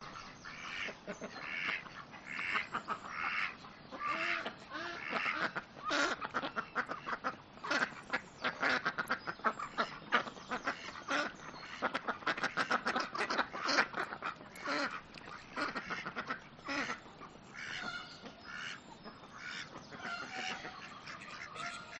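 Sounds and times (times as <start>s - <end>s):
ducks on an urban farm: 0.0s - 21.9s
hens on an urban farm: 0.0s - 21.9s.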